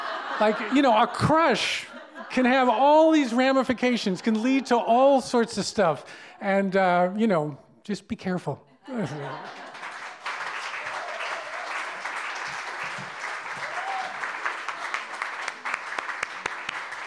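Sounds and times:
laughter: 0:00.0 - 0:07.2, 0:08.7 - 0:10.2
speech: 0:00.4 - 0:09.6
crowd applauding: 0:09.1 - 0:17.0
sharp individual claps: 0:10.1 - 0:17.0.

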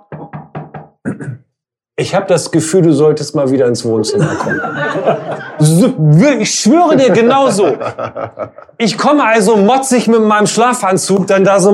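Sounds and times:
man knocking on a door: 0:00.0 - 0:01.0
speech: 0:01.0 - 0:01.4, 0:02.0 - 0:11.7
laughter: 0:04.0 - 0:09.0.

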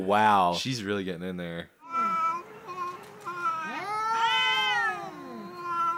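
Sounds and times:
speech: 0:00.0 - 0:01.8
cat meowing and yowling: 0:01.8 - 0:05.9.

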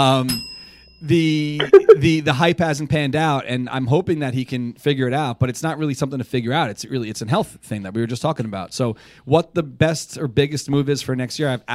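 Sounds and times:
speech: 0:00.0 - 0:11.7
bright bicycle-style bell dinging: 0:00.2 - 0:01.0.

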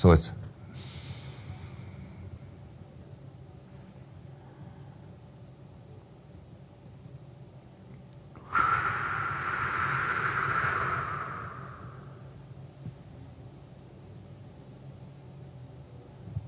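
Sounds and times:
person inhaling slowly: 0:00.7 - 0:02.0, 0:08.4 - 0:12.4
breathy exhale during box breathing: 0:00.7 - 0:02.3, 0:08.4 - 0:12.4.

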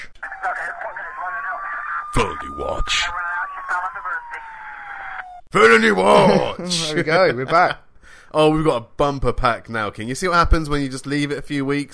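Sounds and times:
police siren sound effect: 0:00.2 - 0:05.5
speech: 0:02.1 - 0:03.2, 0:05.5 - 0:11.9.

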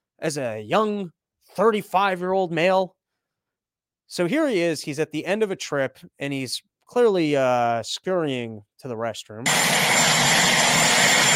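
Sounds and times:
speech: 0:00.2 - 0:03.0, 0:04.1 - 0:11.3
helicopter engine and rotor roar: 0:09.5 - 0:11.3.

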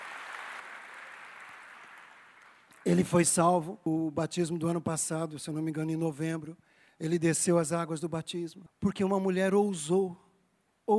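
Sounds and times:
audience applauding: 0:00.0 - 0:03.0
speech: 0:02.8 - 0:10.2.

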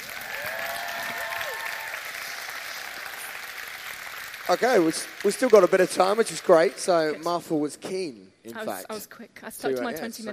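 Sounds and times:
room full of people applauding: 0:00.0 - 0:07.3
speech: 0:04.5 - 0:10.3.

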